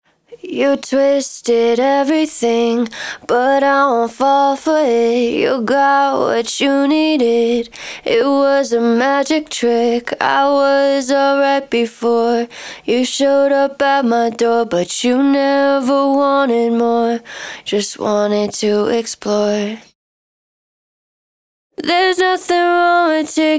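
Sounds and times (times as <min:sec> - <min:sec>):
dry main vocal acapella in D sharp minor: 0:00.3 - 0:19.9, 0:21.8 - 0:23.5.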